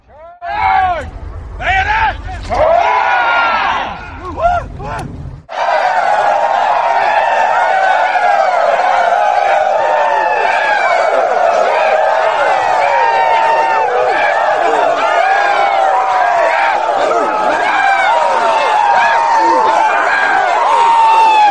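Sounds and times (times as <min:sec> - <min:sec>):
brief rumble: 0:00.0 - 0:05.5
scattered shouts: 0:00.0 - 0:21.4
hundreds of men giving a rebel yell while charging: 0:00.4 - 0:05.0, 0:07.7 - 0:21.4.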